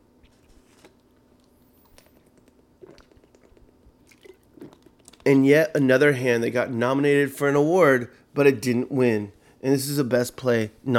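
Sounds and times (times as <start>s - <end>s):
low steady hum: 0.0s - 10.9s
person sipping water: 0.2s - 5.3s
speech: 5.3s - 10.9s.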